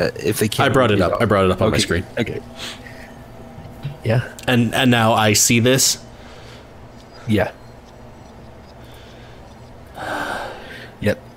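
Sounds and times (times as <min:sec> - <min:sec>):
speech: 0:00.0 - 0:02.8, 0:04.0 - 0:06.1, 0:07.2 - 0:07.6, 0:11.0 - 0:11.3
person panting heavily: 0:08.8 - 0:11.0.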